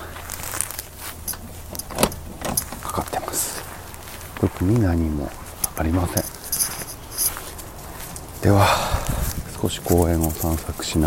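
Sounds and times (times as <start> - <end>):
low steady hum: 0.0 - 11.0
padlock rattling on a locked storage shed door: 1.2 - 2.9, 5.5 - 8.5
speech: 4.4 - 6.3, 9.6 - 11.0.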